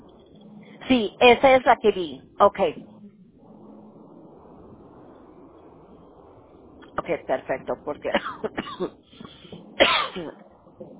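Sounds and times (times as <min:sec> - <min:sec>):
speech: 0:00.9 - 0:02.9, 0:07.0 - 0:10.9
person coughing with a recurring cough while talking: 0:08.1 - 0:09.0, 0:09.8 - 0:10.4.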